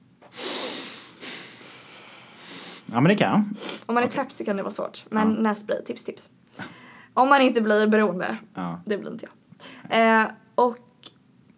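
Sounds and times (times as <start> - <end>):
breathing in and out through the nose during a meditation exercise: 0.3 - 2.9
speech: 2.9 - 10.8.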